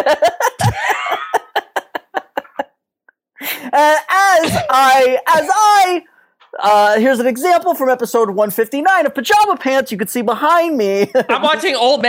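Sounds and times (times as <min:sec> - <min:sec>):
laughter: 0:00.0 - 0:02.8, 0:11.0 - 0:11.9
person coughing: 0:00.6 - 0:01.3
speech: 0:04.7 - 0:12.0.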